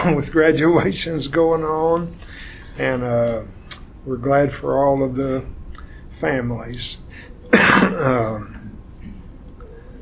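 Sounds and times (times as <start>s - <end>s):
speech: 0.0s - 5.6s, 6.2s - 8.6s
person coughing: 7.5s - 8.4s
raspy voiced throat clearing: 7.5s - 8.5s.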